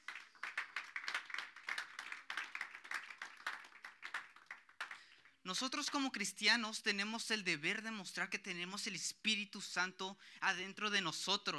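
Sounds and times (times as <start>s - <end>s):
audience applauding: 0.0s - 5.2s
speech: 5.5s - 11.5s.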